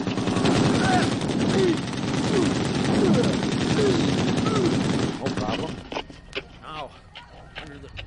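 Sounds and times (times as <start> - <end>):
gunfire in a dramatized wartime border escape: 0.0 - 5.8.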